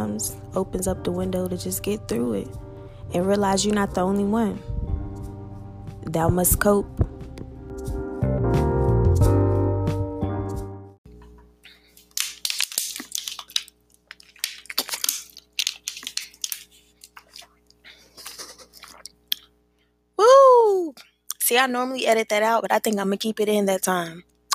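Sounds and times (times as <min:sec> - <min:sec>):
short musical passage: 0:00.0 - 0:11.0
speech: 0:00.2 - 0:04.8, 0:06.0 - 0:07.1, 0:21.6 - 0:24.5
person drinking from a plastic water bottle: 0:12.0 - 0:19.5.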